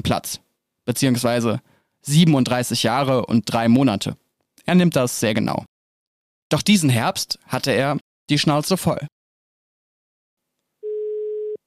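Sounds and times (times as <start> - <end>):
speech: 0.0 - 5.7, 6.5 - 9.2
telephone dial tone while a call is placed: 10.8 - 11.6.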